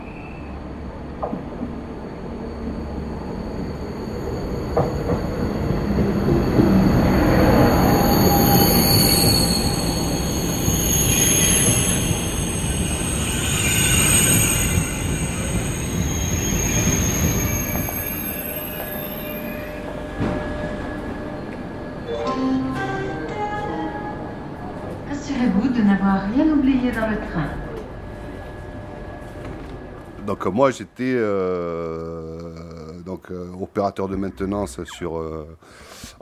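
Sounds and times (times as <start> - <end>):
TGV high-speed train pulling into a station: 0.0 - 31.4
speech: 1.2 - 1.7, 30.6 - 32.6, 33.3 - 35.9
TGV high-speed train wheel squeals: 2.5 - 19.8.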